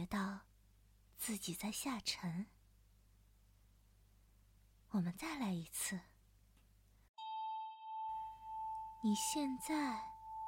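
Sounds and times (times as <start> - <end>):
speech: 0.0 - 0.5, 1.2 - 2.6, 4.9 - 6.1, 9.0 - 10.1
single bell chime rung to call the listener into a trance: 7.2 - 10.4.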